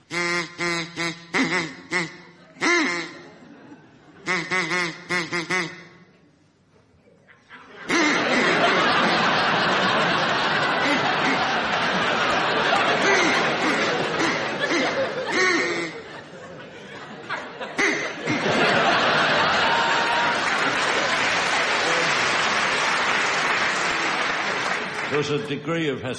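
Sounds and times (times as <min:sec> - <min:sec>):
duck quacking: 0:00.0 - 0:03.4, 0:04.2 - 0:06.0, 0:07.9 - 0:08.8, 0:10.8 - 0:11.7, 0:13.0 - 0:16.1, 0:17.8 - 0:18.4
crowd noise: 0:00.0 - 0:26.1
laughter: 0:02.2 - 0:04.5, 0:07.3 - 0:25.1
speech: 0:25.3 - 0:26.1.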